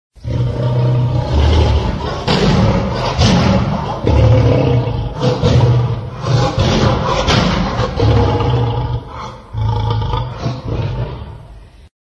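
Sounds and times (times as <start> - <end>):
lion sounds: 0.2 - 11.9.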